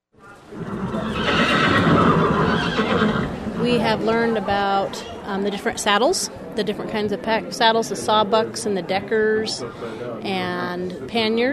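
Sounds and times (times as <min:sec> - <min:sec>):
horse neighing at a backcountry horse packing workshop in Montana: 0:00.5 - 0:03.6
speech: 0:03.7 - 0:11.5.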